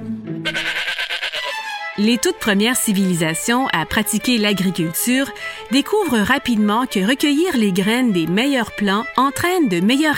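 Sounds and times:
sheep bleating: 0.4 - 1.8
speech: 2.0 - 10.1.

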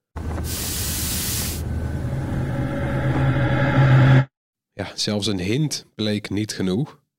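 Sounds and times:
headphones with built-in air purifier fan whirring: 0.3 - 4.2
hissing burst of air: 0.4 - 2.9
rising mechanical hum: 1.1 - 4.2
speech: 4.8 - 7.0.

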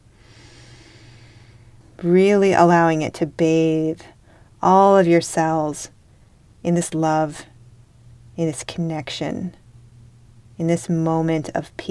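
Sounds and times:
long deep inhale through the nose during a guided breathing exercise: 0.1 - 1.7
speech: 2.0 - 6.0, 6.6 - 7.5, 8.4 - 9.6, 10.6 - 11.8.

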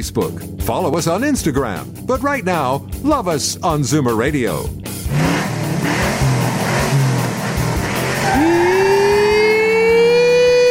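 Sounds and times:
speech: 0.0 - 5.3
race car engine revving hard and accelerating: 4.9 - 10.6
race cars roaring outside: 5.1 - 10.3.

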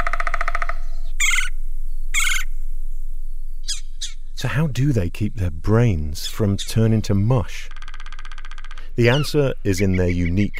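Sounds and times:
woodpecker calling: 0.0 - 2.6, 3.6 - 4.3, 6.2 - 10.5
speech: 4.4 - 7.8, 9.0 - 10.5.

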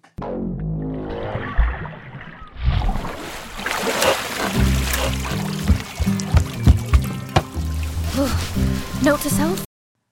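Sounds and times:
underwater rumbling while swimming: 0.6 - 9.6
water splashing and sloshing as a swimmer surfaces: 0.9 - 9.7
speech: 9.0 - 9.7.

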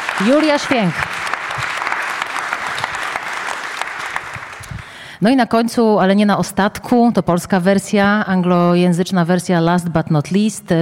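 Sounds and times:
audience applause: 0.0 - 5.0
speech: 0.2 - 1.7, 5.2 - 10.8.

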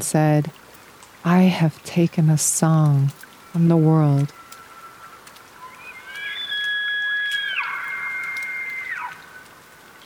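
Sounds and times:
speech: 0.0 - 0.6, 1.2 - 4.4
elk bugling: 4.3 - 10.0.

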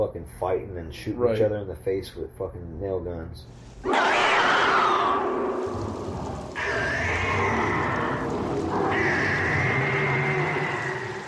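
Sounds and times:
speech: 0.0 - 7.5
monster screaming with wavering shrieks and yowls: 3.8 - 11.2
constant rumbling noisy background: 4.1 - 11.2.

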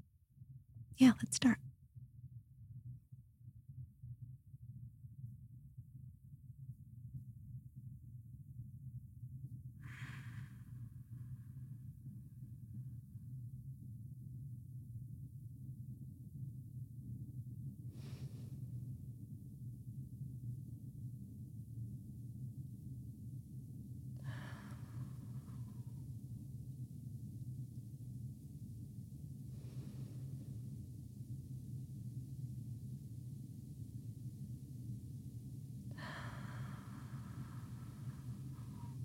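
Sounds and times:
speech: 1.0 - 1.7
low hum: 2.8 - 39.0
slow deep breaths during a guided breathing exercise: 9.7 - 13.2, 17.8 - 19.8, 23.7 - 39.0.

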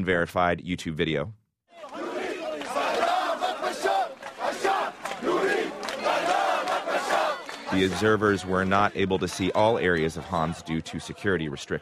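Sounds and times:
speech: 0.0 - 2.0, 7.7 - 11.8
large crowd chanting slogans in Homs: 1.7 - 9.6.

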